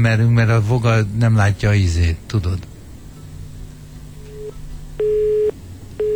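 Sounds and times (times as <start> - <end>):
speech: 0.0 - 2.7
faint hum: 0.0 - 6.1
telephone busy signal: 4.3 - 6.1.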